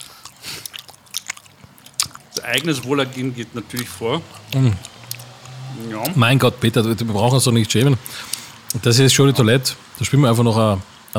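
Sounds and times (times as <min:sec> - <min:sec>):
sharp lip smacks: 0:00.0 - 0:02.4, 0:03.7 - 0:06.2, 0:08.0 - 0:08.8
wet chewing with small crunches: 0:00.0 - 0:06.2, 0:08.0 - 0:08.8
speech: 0:02.4 - 0:04.9, 0:05.8 - 0:11.1.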